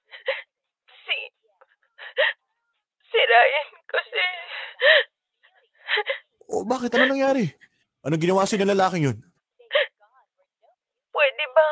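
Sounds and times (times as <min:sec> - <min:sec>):
woman sobbing and crying over the phone: 0:00.0 - 0:07.3, 0:09.6 - 0:10.0
speech: 0:06.6 - 0:09.3.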